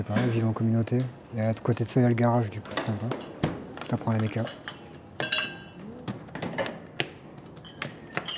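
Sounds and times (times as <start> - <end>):
speech: 0.0 - 4.8
dishes and cutlery clinking in a sink in a community garage: 4.4 - 5.7, 7.6 - 8.3.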